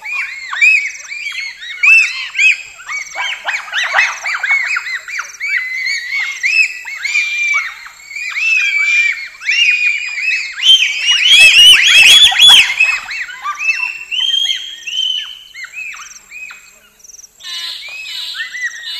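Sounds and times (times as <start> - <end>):
bonobo calls dense chorus of high arched squeaks: 0.0 - 16.7, 17.4 - 18.9.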